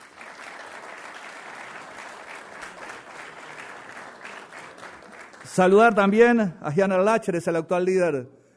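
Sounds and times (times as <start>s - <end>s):
crowd applauding: 0.0s - 6.2s
speech: 5.5s - 8.4s.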